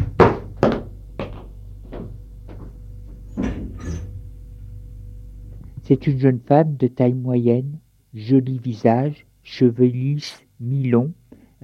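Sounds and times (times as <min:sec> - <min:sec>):
dull knocks and thumps: 0:00.0 - 0:04.1
door creaking: 0:02.0 - 0:04.3
speech: 0:05.9 - 0:11.6.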